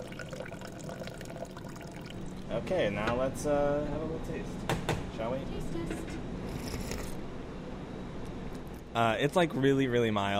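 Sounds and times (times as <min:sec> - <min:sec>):
coffee brewed with egg and cold water pouring through a sieve: 0:00.0 - 0:02.2
speech: 0:02.5 - 0:06.3, 0:09.0 - 0:10.3.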